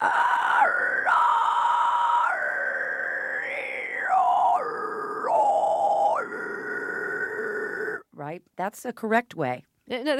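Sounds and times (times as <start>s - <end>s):
person producing a false vocal cord shriek: 0.0s - 8.0s
speech: 8.4s - 10.1s.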